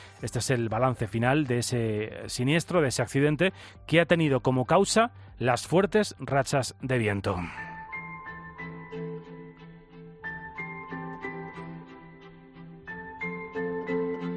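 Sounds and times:
instrumental film score music with low tones and plucked or chiming notes: 0.0 - 14.3
speech: 0.2 - 7.7.

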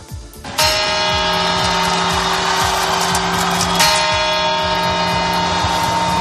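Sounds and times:
big clock tower bell striking: 0.5 - 6.2.

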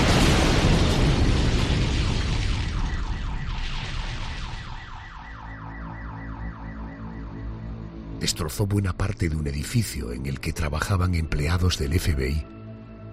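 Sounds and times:
truck bomb of ammonium nitrate and fuel exploding: 0.0 - 5.3
car alarms wailing: 2.6 - 8.6
speech: 8.2 - 12.6.

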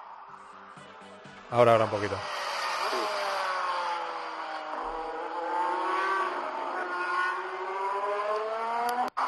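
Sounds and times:
speech: 1.5 - 2.5
Alpine Formula 1 car engine revving: 1.8 - 9.2.

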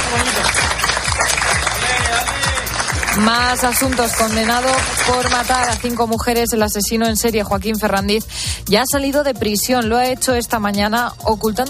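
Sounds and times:
people cheering: 0.0 - 5.8
mail carriers applauding after finishing work delivering election votes: 0.0 - 6.0
speech: 3.2 - 11.6.

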